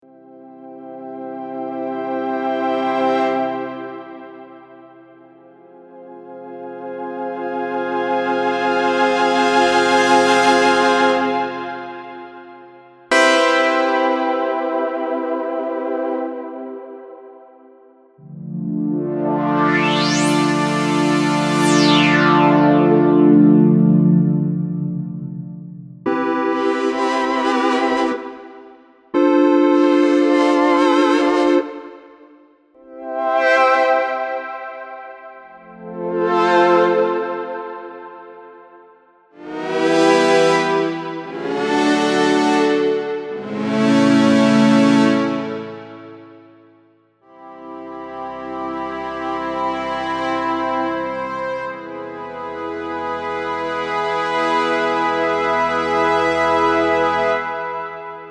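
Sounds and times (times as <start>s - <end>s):
polyphonic synth: 0.1s - 38.7s, 39.3s - 58.2s.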